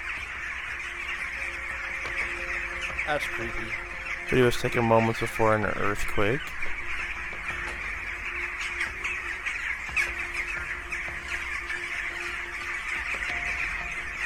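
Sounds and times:
many birds squawking and calling in a tree: 0.0 - 14.2
speech: 3.1 - 6.6.

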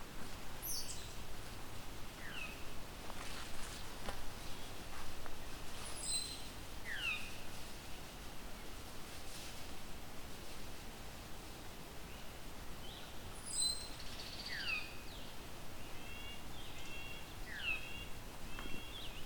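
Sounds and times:
steady hiss: 0.0 - 19.2
Veery singing: 0.6 - 1.2, 5.8 - 7.4, 12.1 - 19.2.

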